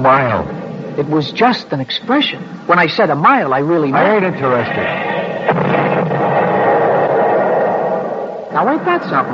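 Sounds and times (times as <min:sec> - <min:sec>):
speech: 0:00.0 - 0:05.1, 0:08.6 - 0:09.3
artillery shell exploding in wartime: 0:04.4 - 0:09.3.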